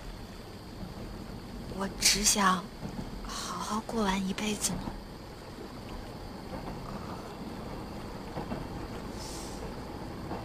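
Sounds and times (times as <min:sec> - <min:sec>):
train passing: 0:00.0 - 0:10.4
speech: 0:01.8 - 0:05.0.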